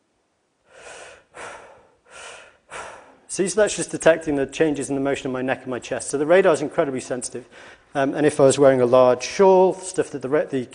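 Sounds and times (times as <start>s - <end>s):
heavy breathy exhalations and inhalations: 0.6s - 3.3s, 7.4s - 7.9s
speech: 3.4s - 10.7s.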